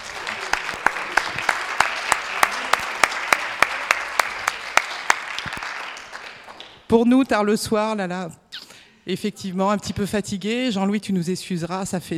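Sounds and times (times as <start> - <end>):
small audience at a meeting clapping: 0.0 - 6.9
speech: 6.9 - 8.4, 9.0 - 12.1.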